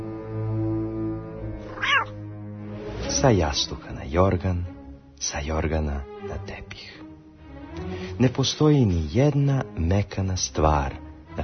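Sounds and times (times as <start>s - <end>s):
cat giving a short bright meow: 1.6s - 2.2s
speech: 3.2s - 7.0s, 8.2s - 11.4s.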